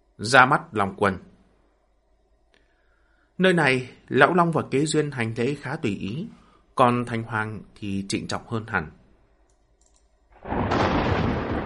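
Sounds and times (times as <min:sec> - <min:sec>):
speech: 0:00.2 - 0:01.3, 0:03.4 - 0:09.0
thunder rumbling in a stormy sky over a lake: 0:10.4 - 0:11.6.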